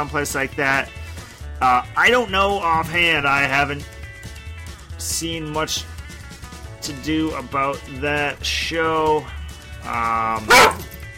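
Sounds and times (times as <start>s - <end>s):
speech: 0.0s - 1.0s, 1.6s - 4.0s, 5.0s - 5.9s, 6.8s - 10.8s
dog sharp loud bark: 10.4s - 10.9s
dog drawn-out whining yelp: 10.5s - 10.9s.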